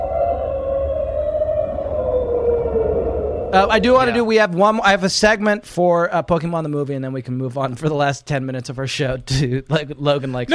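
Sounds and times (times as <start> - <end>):
whale-song-like creature cry: 0.0 - 4.2
low rumbling background: 0.0 - 4.4
speech: 3.5 - 10.5.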